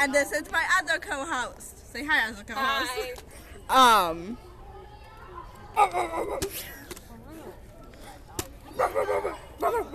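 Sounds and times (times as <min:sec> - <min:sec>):
speech: 0:00.0 - 0:04.5, 0:05.8 - 0:06.8, 0:08.8 - 0:09.9
female dog barking: 0:08.8 - 0:09.9.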